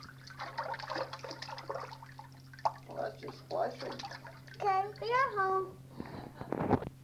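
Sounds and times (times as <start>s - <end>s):
watery swishes: 0.0s - 5.3s
steady hum: 0.0s - 7.0s
child making splashing and swooshing sounds with their voice: 3.8s - 5.7s.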